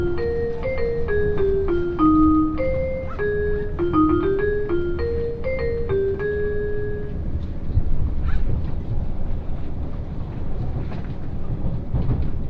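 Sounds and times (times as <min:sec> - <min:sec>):
limited express train carriage running: 0:00.0 - 0:12.4.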